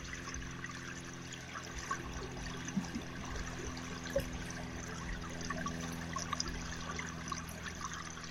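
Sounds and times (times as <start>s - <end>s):
gently burbling creek water with small splashes and trickles: 0.0s - 8.2s.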